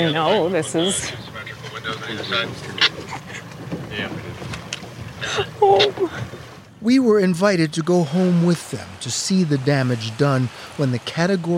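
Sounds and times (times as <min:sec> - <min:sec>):
speech: 0:00.0 - 0:02.9, 0:03.9 - 0:04.4, 0:05.2 - 0:11.5
wind buffeting the microphone: 0:00.0 - 0:06.9
boat engine rumble on open water to Sanibel Florida: 0:00.0 - 0:11.5
water splashing: 0:00.0 - 0:11.5.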